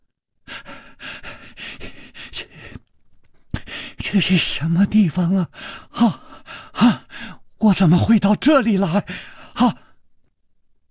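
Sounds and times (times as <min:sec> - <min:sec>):
man panting heavily, gasping for breath: 0:00.5 - 0:02.8, 0:03.6 - 0:04.0, 0:05.5 - 0:07.4, 0:09.0 - 0:09.9
speech: 0:04.1 - 0:06.2, 0:07.6 - 0:09.8.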